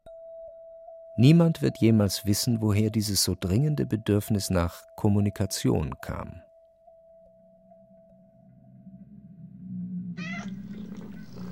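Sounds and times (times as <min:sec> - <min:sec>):
speech: 0:01.2 - 0:06.5
low droning hum: 0:08.0 - 0:11.5
cat meowing like a strained caterwaul: 0:10.2 - 0:11.5.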